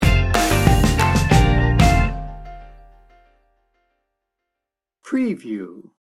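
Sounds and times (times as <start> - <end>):
reggae pop sting bumper: 0.0 - 2.7.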